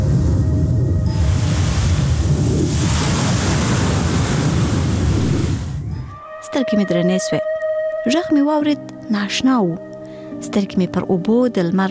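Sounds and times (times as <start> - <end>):
sea waves roaring on a sandy beach: 0.0 - 6.0
rushing wind gusts on a sandy beach: 0.0 - 6.2
speech: 6.6 - 11.8.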